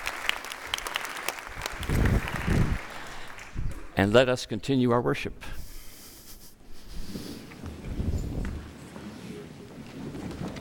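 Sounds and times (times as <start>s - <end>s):
church audience applauding: 0.0s - 4.0s
speech: 4.0s - 5.6s.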